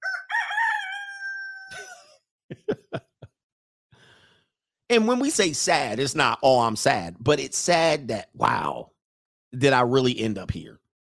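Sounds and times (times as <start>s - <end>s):
rooster crowing: 0.0s - 2.0s
laughter: 1.7s - 3.3s
speech: 2.5s - 3.0s, 4.9s - 8.9s, 9.5s - 10.8s.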